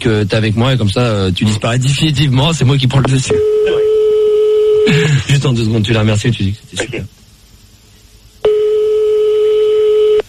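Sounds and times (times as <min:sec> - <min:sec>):
speech: 0:00.0 - 0:03.9, 0:04.8 - 0:07.2
telephone ringing tone on a call: 0:03.3 - 0:04.8, 0:08.4 - 0:10.2.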